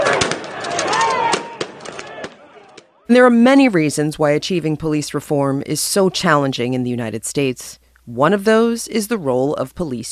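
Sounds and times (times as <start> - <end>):
pepper ball guns firing: 0.0 - 2.8
flashbangs thrown at people exploding: 0.0 - 2.9
speech: 3.1 - 10.1.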